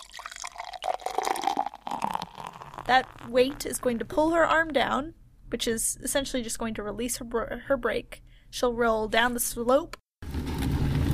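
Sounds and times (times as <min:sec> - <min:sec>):
liquid dripping from a reservoir into the small cup of a miniature figure: 0:00.0 - 0:04.1
speech: 0:02.9 - 0:10.0.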